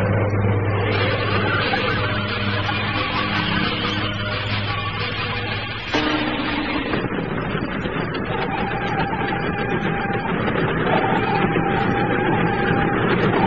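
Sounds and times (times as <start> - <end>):
thin metallic whine: 0.0 - 13.4
train rumbling along the rails: 0.0 - 13.4.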